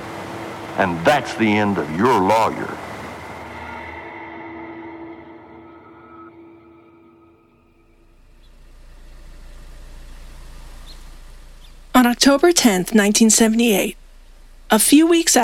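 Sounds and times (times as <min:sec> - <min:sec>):
car engine idling outside a house: 0:00.0 - 0:04.6, 0:07.9 - 0:15.4
speech: 0:00.8 - 0:02.8, 0:12.2 - 0:14.0, 0:14.7 - 0:15.4.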